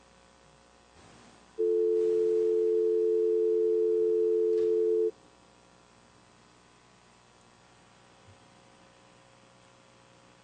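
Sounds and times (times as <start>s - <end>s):
loud steady telephone dial tone: 1.6s - 5.1s.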